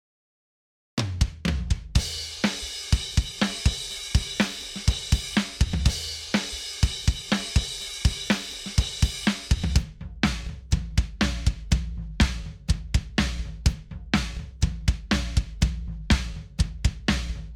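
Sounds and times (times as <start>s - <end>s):
dry drums: 1.0s - 17.5s.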